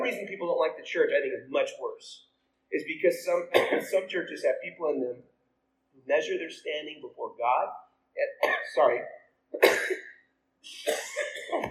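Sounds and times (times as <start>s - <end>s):
speech: 0.1s - 5.3s, 6.1s - 11.6s
person coughing harsh and throaty: 3.5s - 4.1s, 8.4s - 8.8s, 9.6s - 10.2s, 10.8s - 11.6s.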